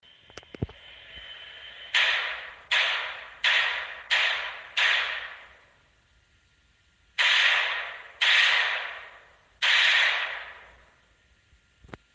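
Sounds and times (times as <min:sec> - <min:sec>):
glook shot: 0:01.4 - 0:05.7, 0:07.2 - 0:11.0.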